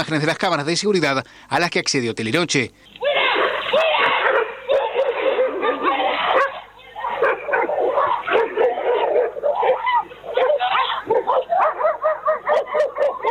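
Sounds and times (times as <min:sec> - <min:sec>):
speech: 0:00.0 - 0:03.0
agitated human voices: 0:02.9 - 0:12.3
several dogs barking, yipping and whimpering during an attack: 0:03.0 - 0:13.2.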